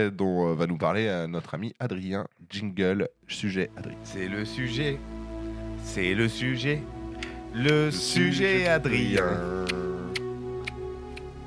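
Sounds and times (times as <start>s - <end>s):
speech: 0.0s - 5.2s, 5.8s - 9.8s
steady low musical drone: 3.6s - 11.4s
crisp clock ticks: 8.6s - 11.3s.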